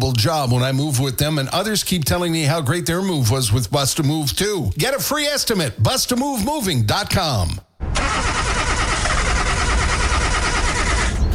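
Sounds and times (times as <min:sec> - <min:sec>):
speech: 0:00.1 - 0:07.7
car engine cranking and failing to start: 0:07.8 - 0:11.3.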